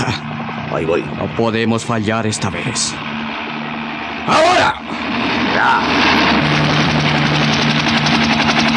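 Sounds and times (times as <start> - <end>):
helicopter engine roaring during a descent: 0.0 - 8.7
speech: 0.7 - 3.1, 4.2 - 5.0, 5.6 - 6.5.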